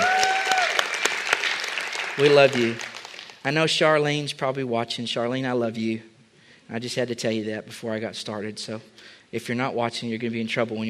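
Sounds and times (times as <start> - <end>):
crowd clapping: 0.0 - 3.5
speech: 2.2 - 6.1, 6.7 - 10.8.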